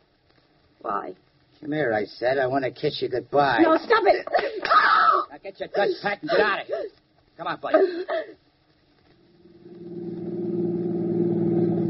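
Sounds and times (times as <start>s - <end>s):
speech: 0.8s - 8.4s
car engine droning while driving: 9.3s - 11.8s.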